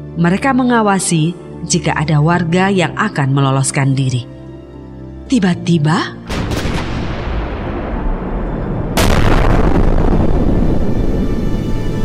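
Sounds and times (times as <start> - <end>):
speech: 0.2 - 4.4, 5.3 - 6.2
large explosion: 6.3 - 11.9.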